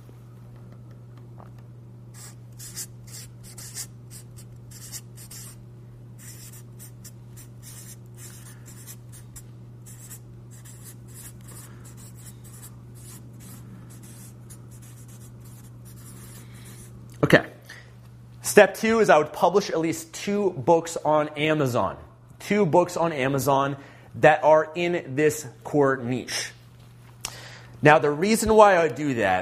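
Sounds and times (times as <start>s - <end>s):
steady low hum: 0.0s - 29.3s
handwriting with a pen or pencil: 2.2s - 5.6s, 6.2s - 9.2s, 9.9s - 16.8s
speech: 17.2s - 17.5s, 18.6s - 26.5s, 27.8s - 29.3s.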